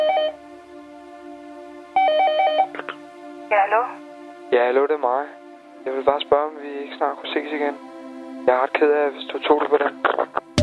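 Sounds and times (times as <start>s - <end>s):
steady electronic telephone tone at the opening of a pop song: 0.0s - 0.4s, 2.0s - 2.7s
rapid warbling telephone beeps: 2.0s - 2.7s
speech: 3.6s - 10.2s.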